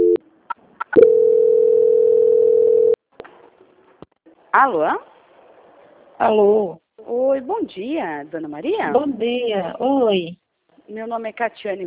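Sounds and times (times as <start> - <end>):
steady single-pitched telephone line tone while a call is transferred: 0.0 - 0.2, 1.0 - 3.0
speech: 4.6 - 5.1, 6.2 - 11.8.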